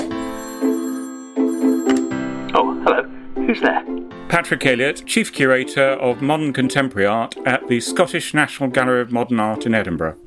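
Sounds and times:
telephone bell ringing: 0.0 - 3.0
speech: 3.5 - 10.2.

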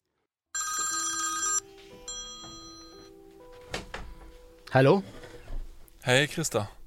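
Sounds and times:
telephone bell ringing: 0.6 - 3.2
speech: 4.7 - 5.2, 6.0 - 6.8.

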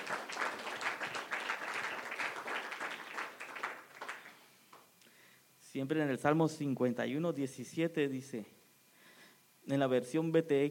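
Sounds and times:
audience applause: 0.0 - 4.4
speech: 5.8 - 8.6, 9.7 - 10.6.

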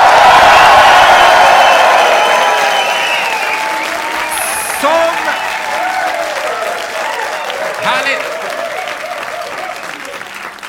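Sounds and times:
live audience of about 350 people applauding and cheering in a hotel venue: 0.0 - 10.6
shrill whistle: 1.6 - 5.6.

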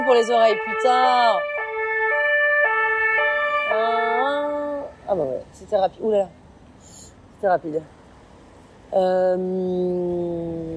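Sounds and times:
ambulance siren two-tone wail passing by: 0.0 - 5.0
speech: 0.1 - 1.6, 3.7 - 8.0, 8.9 - 10.7.

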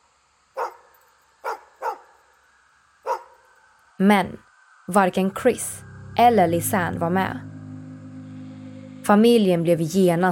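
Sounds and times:
faint steady hum: 0.0 - 10.3
dog barking: 0.6 - 2.2, 3.0 - 3.4
speech: 4.0 - 7.5, 9.1 - 10.3.

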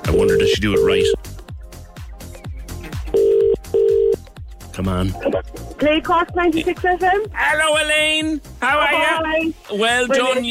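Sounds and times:
telephone ringback tone on an outgoing call: 0.0 - 1.2, 3.2 - 4.2
low thumping beats: 0.0 - 7.4
speech: 0.2 - 1.2, 4.9 - 10.4.

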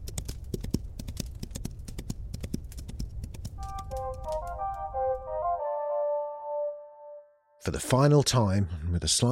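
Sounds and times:
horse hooves galloping: 0.0 - 4.9
sustained orchestral melody: 3.6 - 7.6
speech: 4.0 - 5.1, 7.6 - 9.3.

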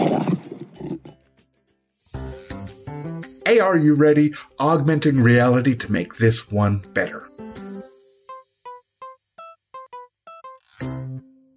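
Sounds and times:
lion roaring: 0.0 - 1.2
speech: 3.5 - 7.3.

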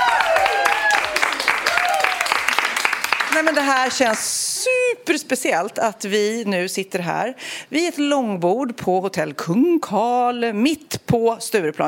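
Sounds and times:
listeners whooping and cheering: 0.0 - 2.6
small group of ten listeners clapping at a long table: 0.0 - 4.3
speech: 3.4 - 11.8.

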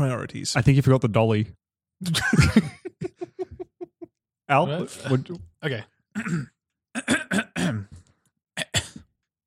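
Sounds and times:
speech: 0.0 - 2.8, 4.5 - 6.5
laughter: 2.0 - 4.1
stifled choked-back coughs: 6.2 - 8.0, 8.6 - 9.1
rough throat clearing: 6.2 - 9.1.

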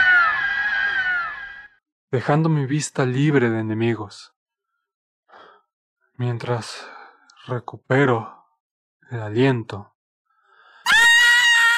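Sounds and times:
high-pitched scream: 0.0 - 1.7, 10.8 - 11.7
speech: 2.1 - 4.4, 6.2 - 8.4, 9.1 - 9.9.

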